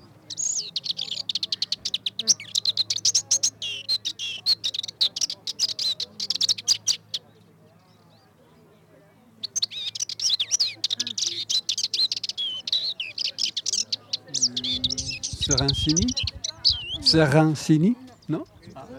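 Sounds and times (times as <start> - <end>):
subalpine warbler singing a rapid scratchy twittering song: 0.0 - 8.2, 9.4 - 18.8
faint low hum: 14.4 - 17.4
speech: 15.6 - 16.3, 17.1 - 18.5.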